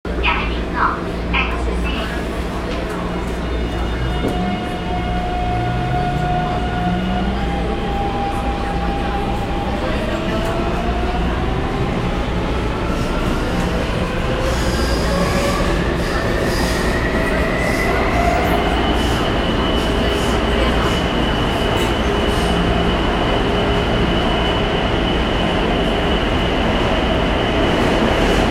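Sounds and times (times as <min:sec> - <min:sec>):
Taipei metro train rumbling: 0:00.0 - 0:28.4.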